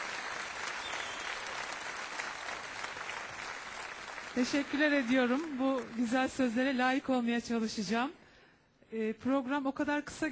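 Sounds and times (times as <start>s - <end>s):
audience applause welcoming a guest at a live program: 0.0s - 6.6s
speech: 4.4s - 8.2s, 8.9s - 10.3s.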